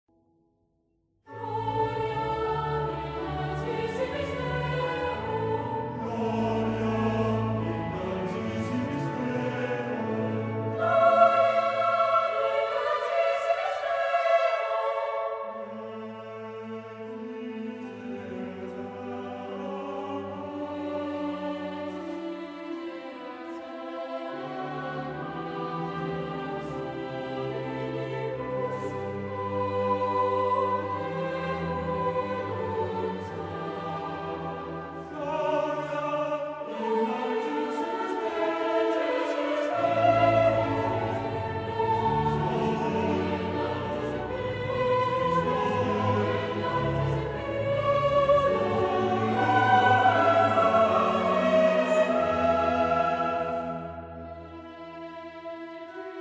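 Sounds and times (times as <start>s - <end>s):
choir: 1.3s - 56.1s.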